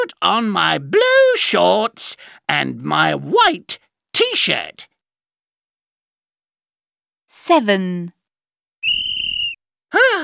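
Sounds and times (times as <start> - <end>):
speech: 0.3 - 4.9, 7.4 - 8.2, 9.9 - 10.2
sports teacher blowing a whistle: 8.8 - 9.6.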